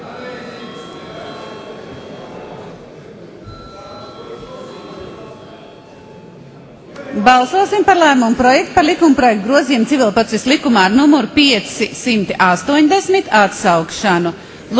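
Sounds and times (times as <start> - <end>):
electric bell ringing in a parliament before a vote: 0.0 - 2.8, 3.4 - 6.7
noisy background in a parliament: 0.0 - 14.7
speech: 7.2 - 14.7.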